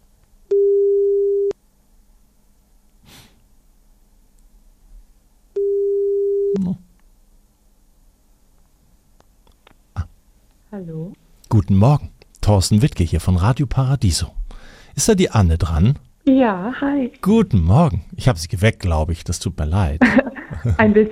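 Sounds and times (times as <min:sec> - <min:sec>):
ringback tone of an outgoing telephone call: 0:00.5 - 0:01.5, 0:05.6 - 0:06.6
soft breathing or snorting noises: 0:03.0 - 0:03.4, 0:14.4 - 0:15.0
speech: 0:10.8 - 0:14.4, 0:15.0 - 0:21.1
laughter: 0:20.0 - 0:21.1.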